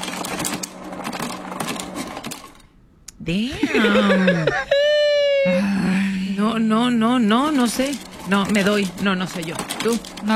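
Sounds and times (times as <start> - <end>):
ice cubes rattling out of a refrigerator dispenser: 0.0 - 2.6, 7.3 - 10.3
speech: 3.2 - 4.7, 5.4 - 10.3
people laughing loudly: 3.6 - 6.1.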